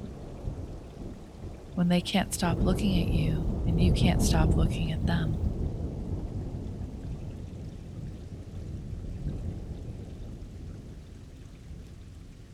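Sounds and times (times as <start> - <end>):
heavy rain: 0.0 - 12.5
speech: 1.8 - 5.5.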